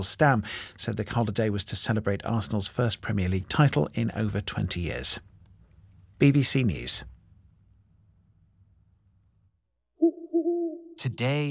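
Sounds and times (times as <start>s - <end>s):
speech: 0.0s - 5.3s, 6.2s - 7.2s, 11.0s - 11.5s
owl hooting: 10.0s - 11.1s.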